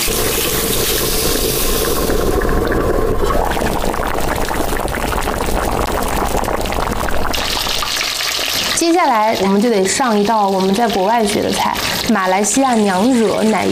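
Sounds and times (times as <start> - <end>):
passion fruit sour soup hot pot with wagyu beef boiling: 0.1 - 13.7
speech: 8.9 - 13.7.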